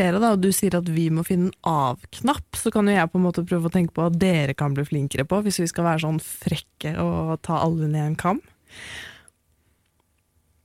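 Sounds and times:
speech: 0.0s - 9.1s
loud breath blown into the microphone: 8.7s - 9.4s
faint small clicks: 9.5s - 10.6s.

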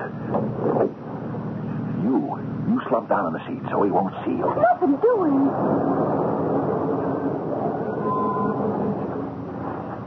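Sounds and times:
broadband road noise: 0.0s - 10.0s
car engine rumble: 0.0s - 10.0s
speech: 3.0s - 6.4s.

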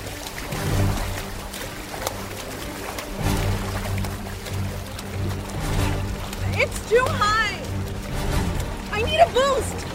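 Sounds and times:
water sloshing and splashing: 0.0s - 9.9s.

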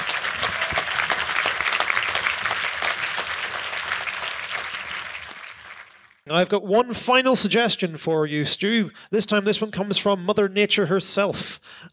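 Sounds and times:
audience applause: 0.0s - 6.2s
speech: 6.3s - 11.9s.

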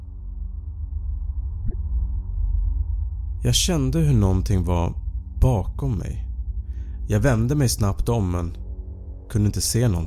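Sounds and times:
low droning hum: 0.0s - 10.0s
speech: 3.4s - 6.3s, 7.1s - 8.6s, 9.3s - 10.0s.

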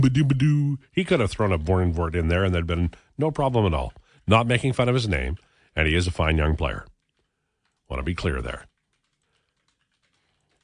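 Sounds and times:
speech: 0.0s - 6.9s, 7.9s - 8.7s
rapid continuous typing on a typewriter: 8.2s - 10.6s.

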